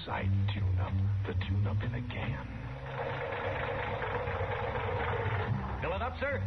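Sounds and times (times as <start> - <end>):
speech: 0.1 - 2.6, 5.9 - 6.4
worn car engine with a sticking valve idling: 2.7 - 5.9.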